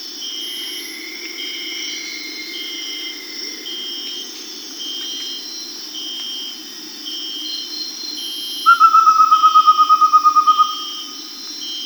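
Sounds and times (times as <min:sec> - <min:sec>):
Amazonian pygmy owl whistling in South America: 0:08.6 - 0:11.2.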